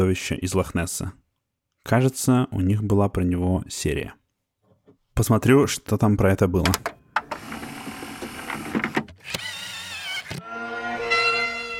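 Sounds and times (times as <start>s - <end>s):
speech: 0.0s - 1.2s, 1.8s - 4.2s, 5.2s - 7.4s
bagpipe-like drone with a buzzing reedy tone: 10.4s - 11.7s.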